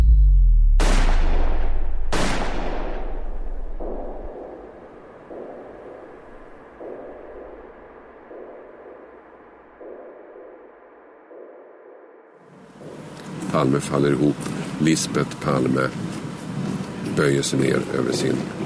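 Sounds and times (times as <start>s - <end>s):
low pulsing drone: 0.0s - 17.2s
gunshots fired at close range: 0.8s - 10.8s
speech: 13.6s - 16.2s, 17.2s - 18.6s.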